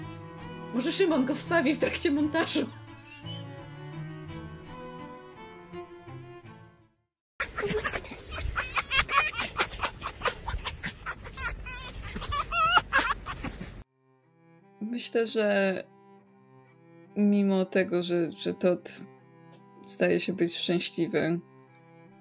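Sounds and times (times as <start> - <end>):
soft music: 0.0 - 7.0, 13.9 - 22.1
speech: 0.7 - 2.8, 15.1 - 15.9, 17.2 - 19.1, 19.9 - 21.5
happy fox's rapid chattering cackle: 7.4 - 13.4.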